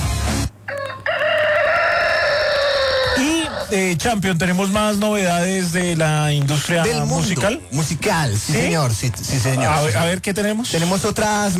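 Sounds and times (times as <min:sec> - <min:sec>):
rooster crowing: 0:00.7 - 0:03.8
speech: 0:03.7 - 0:11.5.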